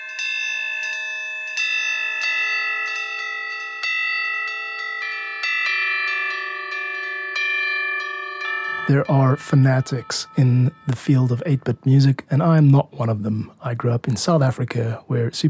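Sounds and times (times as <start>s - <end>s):
Eastern-style bell-like chime melody in music: 0.0s - 11.9s
speech: 8.9s - 15.4s.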